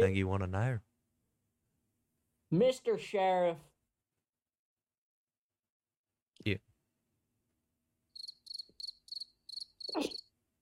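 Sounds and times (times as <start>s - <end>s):
speech: 0.0s - 0.9s, 2.5s - 3.7s, 6.4s - 6.7s, 9.9s - 10.2s
cricket chirping: 8.1s - 10.3s.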